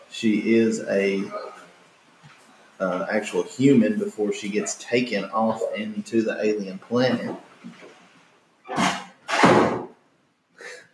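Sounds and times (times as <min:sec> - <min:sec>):
speech: 0:00.2 - 0:01.5, 0:02.8 - 0:07.8
door slamming shut: 0:08.7 - 0:10.0.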